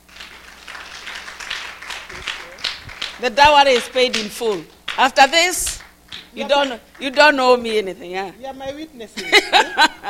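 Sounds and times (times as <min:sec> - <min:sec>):
crowd clapping: 0:00.0 - 0:07.8
speech: 0:03.2 - 0:10.0
laughter: 0:09.2 - 0:10.0.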